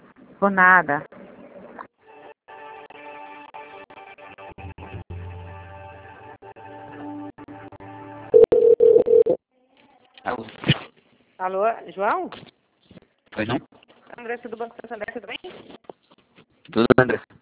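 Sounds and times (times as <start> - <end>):
speech: 0.4 - 1.1, 11.4 - 12.5, 13.4 - 15.7, 16.7 - 17.4
telephone line tone during call transfer: 8.3 - 9.4.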